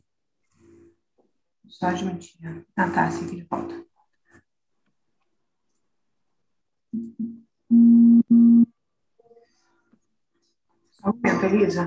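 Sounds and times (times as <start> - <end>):
speech: 1.7 - 3.8, 11.0 - 11.8
phone call-waiting tone signalling an incoming call: 7.0 - 9.4.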